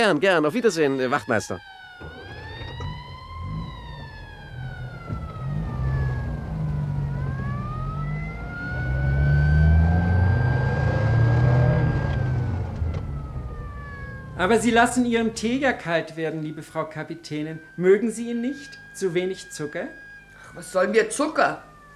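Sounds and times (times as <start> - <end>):
speech: 0.0 - 2.1, 14.4 - 21.7
police car sirens wailing along a street: 0.0 - 21.9
low vehicle rumble: 1.6 - 19.0.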